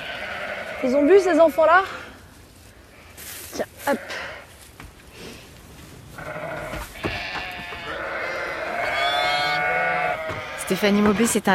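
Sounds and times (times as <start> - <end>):
ewes bleating: 0.0 - 1.9, 3.8 - 4.5, 6.2 - 11.5
speech: 0.8 - 2.0, 3.9 - 4.2, 10.7 - 11.5.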